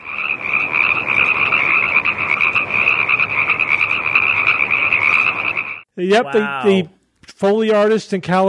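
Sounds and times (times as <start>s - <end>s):
chorus of Pacific tree frogs calling ribbit: 0.0s - 5.9s
speech: 6.0s - 8.4s.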